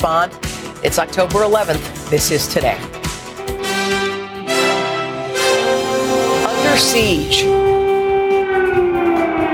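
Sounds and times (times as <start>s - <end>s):
speech: 0.0s - 3.0s, 6.7s - 7.8s
air raid siren blaring with a steady wailing tone: 3.7s - 9.5s.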